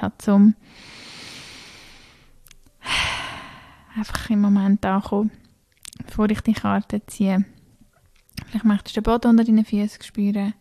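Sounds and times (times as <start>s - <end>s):
speech: 0.0s - 1.0s, 4.0s - 5.4s, 6.2s - 7.5s, 8.5s - 10.6s
deep breath in and out: 0.6s - 3.9s.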